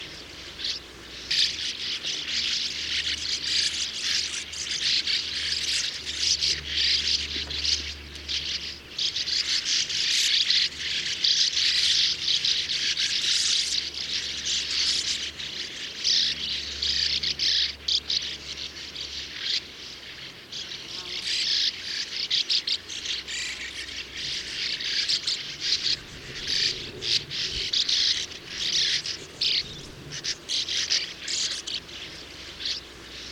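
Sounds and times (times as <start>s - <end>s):
sand martin calling in Landshut: 0.0s - 33.2s.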